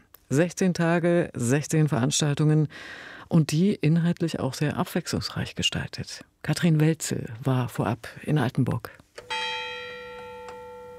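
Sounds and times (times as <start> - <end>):
speech: 0.3 - 9.3
church bells of the castle church on the Schlossberg in Altenburg ringing on a quiet summer day: 9.3 - 10.9.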